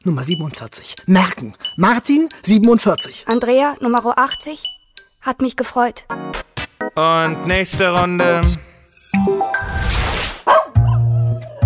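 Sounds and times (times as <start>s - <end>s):
speech: 0.0s - 9.4s
dog barking and yipping: 10.4s - 11.1s.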